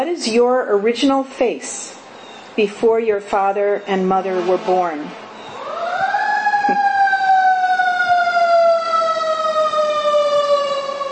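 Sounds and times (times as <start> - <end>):
speech: 0.0 - 2.0, 2.6 - 5.2
siren wailing: 4.3 - 11.1.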